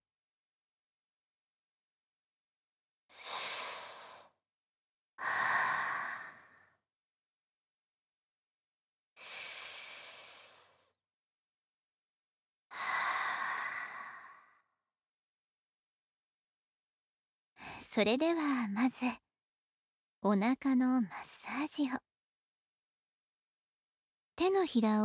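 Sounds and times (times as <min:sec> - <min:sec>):
slow deep breathing during relaxation: 0:05.2 - 0:06.8, 0:09.2 - 0:11.0, 0:12.7 - 0:14.8
speech: 0:17.9 - 0:19.2, 0:20.2 - 0:22.0, 0:24.4 - 0:25.0.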